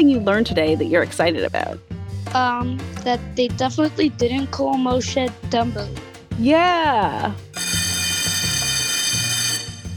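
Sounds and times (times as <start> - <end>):
speech: 0.0 - 7.8
loud bell ringing with a bright metallic tone: 7.6 - 9.9.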